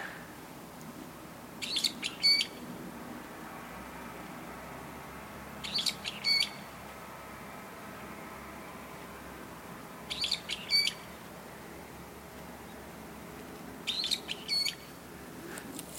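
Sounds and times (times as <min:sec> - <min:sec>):
soft outdoor hush: 0:00.0 - 0:15.9
bird calling from a tree branch: 0:01.6 - 0:02.6, 0:05.6 - 0:06.7, 0:10.1 - 0:11.3, 0:13.8 - 0:14.9.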